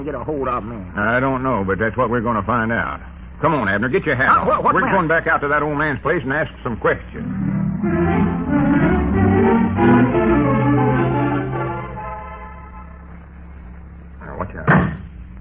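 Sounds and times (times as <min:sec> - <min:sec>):
speech: 0:00.0 - 0:08.9
steady tonal musical bed: 0:07.2 - 0:13.7.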